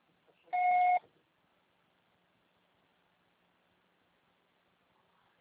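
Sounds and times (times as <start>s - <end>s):
voicemail beep signal: 0.5s - 1.0s.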